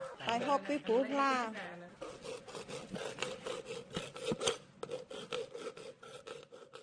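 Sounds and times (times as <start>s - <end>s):
speech: 0.3s - 1.8s
chisel rasping scrapes on silver: 2.0s - 6.8s.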